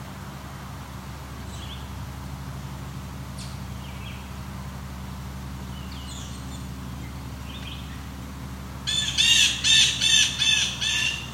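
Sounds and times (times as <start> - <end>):
blue jays calling along a trail: 3.3 - 4.4, 5.6 - 8.2, 8.8 - 11.3.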